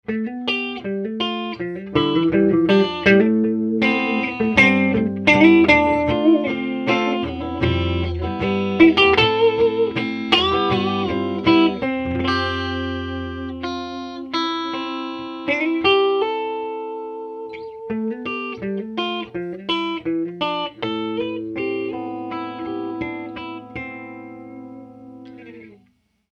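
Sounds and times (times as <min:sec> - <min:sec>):
Fender 59 Bassman Reissue amplifier: 0:00.0 - 0:26.3.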